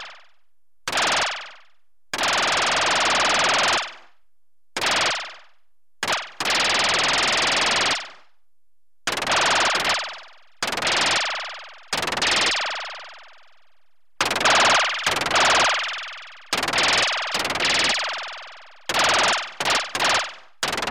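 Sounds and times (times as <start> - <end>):
electronically generated rapid machine gun bursts: 0.9 - 1.6, 2.2 - 4.0, 6.1 - 8.1, 9.1 - 13.0, 14.2 - 20.8.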